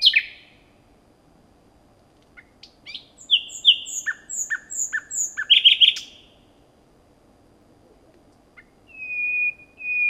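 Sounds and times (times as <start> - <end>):
common nightingale Luscinia megarhynchos singing: 0.0 - 0.7, 2.4 - 6.5, 8.5 - 10.0.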